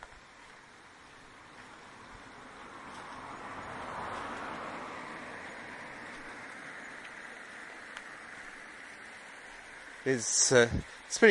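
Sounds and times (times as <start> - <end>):
single car driving past outdoors on a road: 1.3 - 9.9
speech: 10.0 - 11.2.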